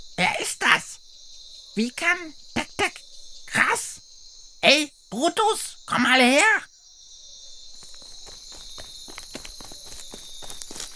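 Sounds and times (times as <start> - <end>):
speech: 1.8 - 2.9, 4.6 - 6.7
heavy stomping footsteps of an ostrich: 7.8 - 10.9.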